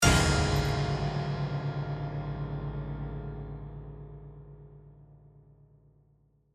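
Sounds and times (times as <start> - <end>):
piano lid crashing: 0.0 - 3.4
horror piano chord: 0.0 - 6.2.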